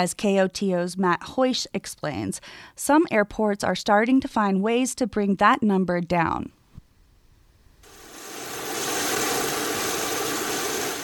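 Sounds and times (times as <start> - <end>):
speech: 0.0 - 6.6
lower-emission airplane engine roaring while refueling on the tarmac at a regional airport: 7.8 - 11.0.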